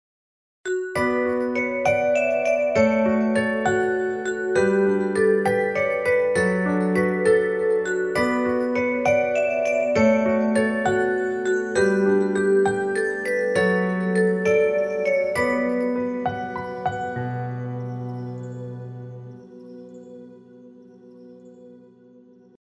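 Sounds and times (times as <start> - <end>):
xylophone: 0.7 - 17.3.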